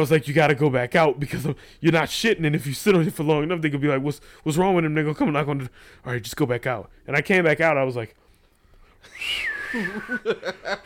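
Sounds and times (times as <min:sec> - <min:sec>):
speech: 0:00.0 - 0:08.2, 0:09.1 - 0:10.8
person imitating poor whistling: 0:09.0 - 0:10.2
laughter: 0:09.6 - 0:10.8.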